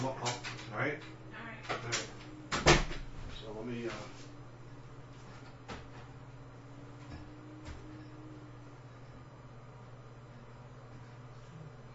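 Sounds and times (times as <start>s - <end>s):
soft low hum: 0.0s - 11.9s
door shutting with a sharp thud: 2.5s - 3.1s.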